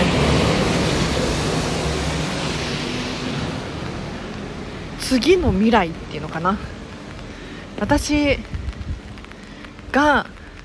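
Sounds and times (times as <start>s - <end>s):
car passing by outside: 0.0s - 5.3s
speech: 5.1s - 6.8s, 7.8s - 8.6s, 10.0s - 10.4s.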